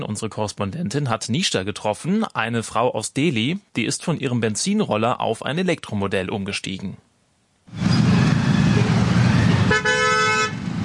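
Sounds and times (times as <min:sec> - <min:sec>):
speech: 0:00.0 - 0:07.1
dense rumble of street traffic: 0:07.7 - 0:10.8
car horns honking in busy city traffic: 0:08.4 - 0:10.7.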